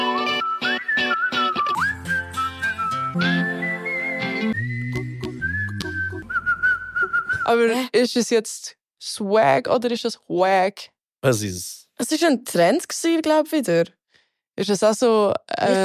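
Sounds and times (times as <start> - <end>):
bright whistled melody in a pop song: 0.0 - 7.5
speech: 3.2 - 3.6, 7.5 - 14.0, 14.6 - 15.8.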